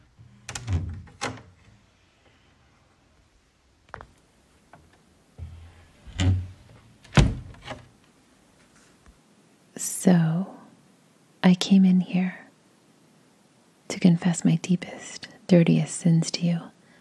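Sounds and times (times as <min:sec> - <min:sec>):
wooden confessional door sliding and clunking open: 0:00.2 - 0:01.8, 0:04.8 - 0:07.9
speech: 0:09.8 - 0:10.6, 0:11.4 - 0:12.4, 0:14.0 - 0:16.7.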